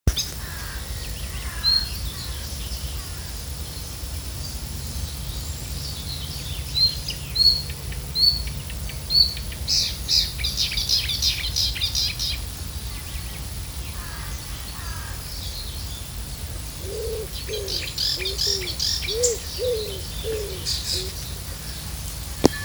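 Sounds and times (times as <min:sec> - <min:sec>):
marsh warbler singing: 0:00.1 - 0:22.6.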